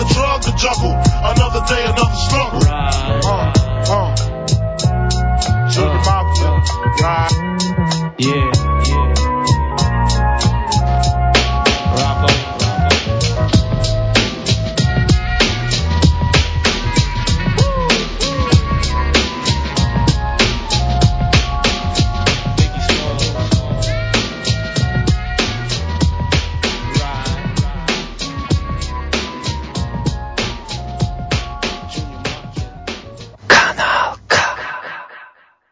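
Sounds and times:
rapping: 0.0 - 4.3, 5.7 - 9.0, 11.8 - 13.1, 17.5 - 20.0, 22.3 - 24.4, 26.7 - 28.8
hip-hop track with punchy drum beat and deep bass: 0.0 - 34.6.

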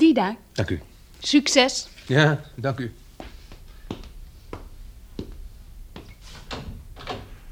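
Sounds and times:
speech: 0.2 - 3.0
door opening and closing: 6.4 - 7.5.

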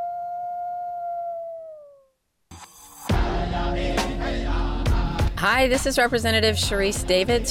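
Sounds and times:
lone wolf howling: 0.0 - 2.1
loud dense music-like sound: 3.1 - 7.4
speech: 5.4 - 7.4.

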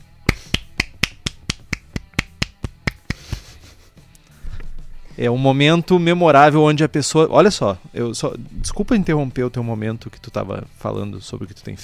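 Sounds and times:
single person clapping: 0.2 - 3.5
speech: 5.2 - 11.8.

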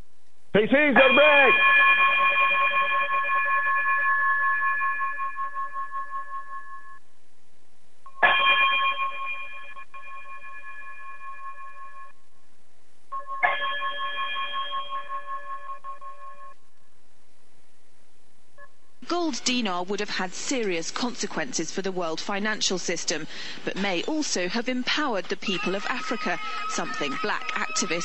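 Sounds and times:
speech: 0.6 - 1.9, 19.5 - 28.0
resonant bell chimes: 1.0 - 7.0, 8.2 - 12.2, 13.2 - 16.6.

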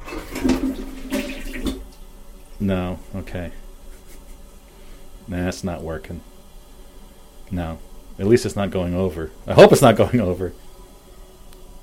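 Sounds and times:
toilet flushing: 0.0 - 2.8
speech: 2.6 - 3.6, 5.3 - 6.3, 7.5 - 10.6
laughter: 3.9 - 4.5.

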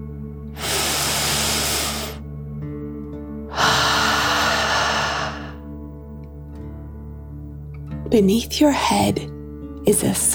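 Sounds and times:
deep dragon breath in and out from a relaxation exercise: 0.6 - 2.2, 3.5 - 5.6
speech: 8.1 - 10.3.

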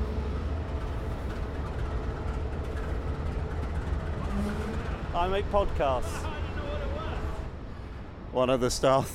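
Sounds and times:
diesel passenger locomotive idling at platform: 0.0 - 8.7
speech: 5.2 - 6.3, 8.4 - 9.1.

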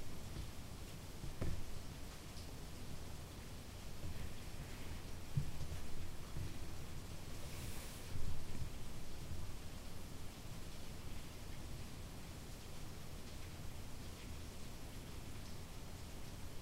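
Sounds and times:
rain falling: 0.0 - 16.5.

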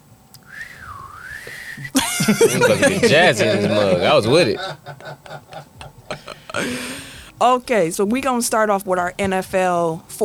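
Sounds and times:
sassy wavering gliding whistle: 0.4 - 2.0
laughter: 0.9 - 9.8
speech: 1.5 - 5.2, 6.6 - 10.2.

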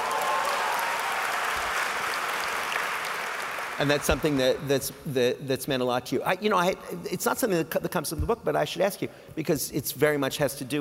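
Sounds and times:
audience applauding: 0.0 - 4.7
speech: 3.8 - 10.7.

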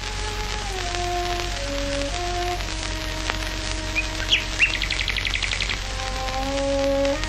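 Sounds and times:
crackling hiss of an old recording: 0.0 - 7.2
slow sustained cello melody: 0.0 - 7.2
nightingale trilling and chirping: 0.9 - 7.2.

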